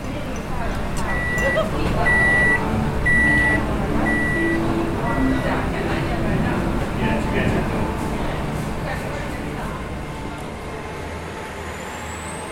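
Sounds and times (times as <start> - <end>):
indistinct voices in a new home: 0.0 - 11.8
microwave oven beeping: 1.0 - 5.9.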